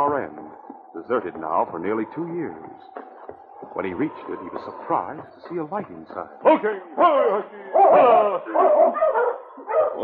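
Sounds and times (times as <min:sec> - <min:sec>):
speech: 0:01.0 - 0:03.0, 0:03.8 - 0:09.3
sled dogs barking and whimpering: 0:02.7 - 0:10.0.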